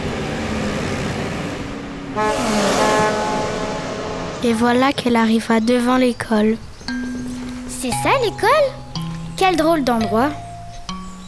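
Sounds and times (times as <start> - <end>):
busy street traffic rumbling: 0.0 - 11.2
car horn sustained toot: 2.0 - 4.8
speech: 4.4 - 7.0, 7.8 - 8.8, 9.4 - 10.4.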